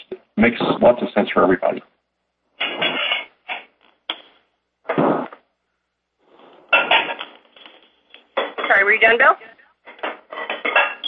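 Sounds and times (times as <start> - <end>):
speech: 0.4 - 1.9
dishes clattering and clanking: 2.6 - 3.7, 6.7 - 8.8, 9.9 - 11.0.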